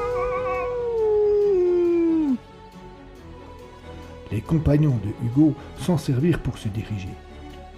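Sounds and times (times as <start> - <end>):
cries of pain: 0.0 - 2.4
long wailing howl in the night: 0.0 - 2.4
speech: 4.3 - 7.3.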